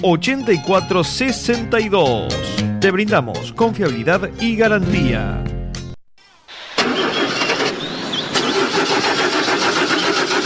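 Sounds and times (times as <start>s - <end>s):
speech: 0.0s - 5.5s
generator engine cranking and starting: 6.5s - 10.4s.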